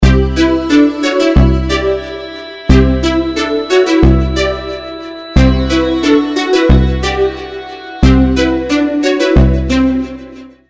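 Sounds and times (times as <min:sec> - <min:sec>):
electronic ringtone in Lydian mode: 0:00.1 - 0:10.3.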